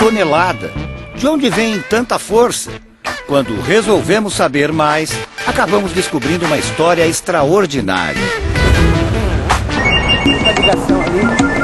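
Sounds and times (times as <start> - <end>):
speech: 0.1 - 8.9
telephones ringing at a waste pickers' cooperative under a viaduct in central São Paulo: 9.8 - 11.6.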